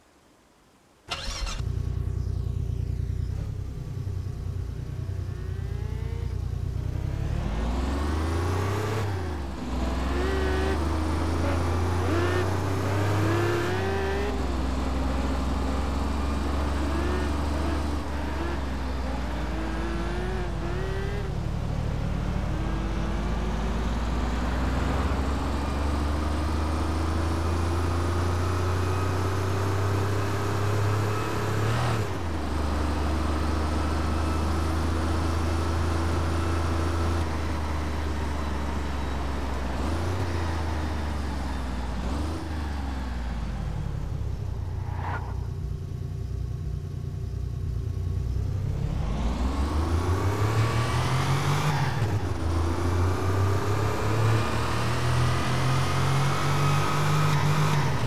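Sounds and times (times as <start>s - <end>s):
Mercedes-Benz E 420 W210 car engine: 1.1s - 58.0s.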